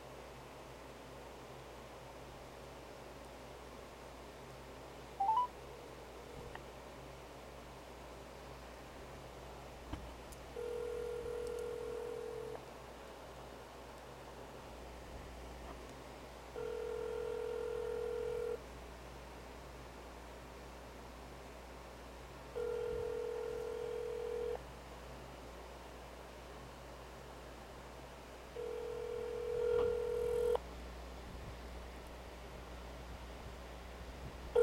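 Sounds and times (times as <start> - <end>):
faint noise: 0.0 - 34.6
low constant hum: 0.0 - 34.6
telephone ringing tones over a speakerphone: 5.2 - 5.5, 10.6 - 12.6, 16.6 - 18.6, 22.6 - 24.6, 28.6 - 30.6.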